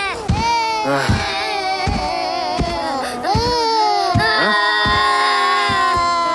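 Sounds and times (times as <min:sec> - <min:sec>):
young children wailing and crying: 0:00.0 - 0:06.3.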